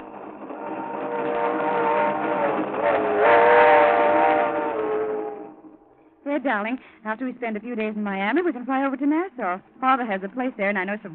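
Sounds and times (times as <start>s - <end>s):
train to Miami rumbling along the rails: 0.0s - 5.8s
speech: 6.4s - 11.1s.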